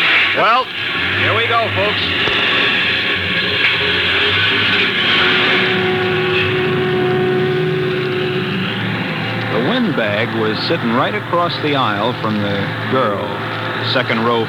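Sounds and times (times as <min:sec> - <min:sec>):
bus engine starting and pulling away: 0:00.0 - 0:14.4
speech: 0:00.4 - 0:02.6, 0:09.8 - 0:14.4.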